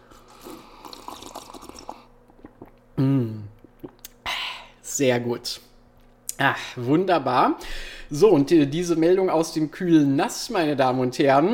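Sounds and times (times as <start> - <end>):
sipping a drink: 0.0 - 4.2
faint swallowing clicks: 0.9 - 4.2
speech: 3.0 - 3.5, 5.0 - 5.6, 6.4 - 11.5.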